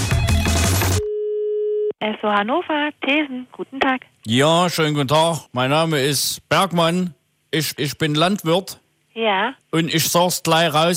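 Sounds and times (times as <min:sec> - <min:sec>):
music: 0:00.0 - 0:01.0
telephone ringing tone of an outgoing call to a petrol station: 0:00.8 - 0:01.9
speech: 0:02.0 - 0:10.9.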